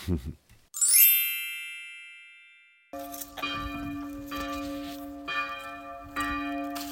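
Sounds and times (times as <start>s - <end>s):
monastery church bells ringing: 1.6s - 6.8s.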